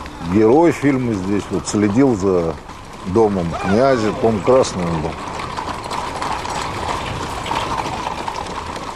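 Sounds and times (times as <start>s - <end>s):
dense noise: 0.0s - 8.9s
horse hooves clip-clopping: 0.0s - 8.9s
speech: 0.3s - 5.3s.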